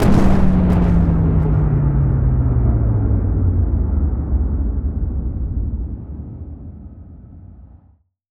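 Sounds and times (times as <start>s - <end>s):
wing explosion: 0.0s - 5.0s.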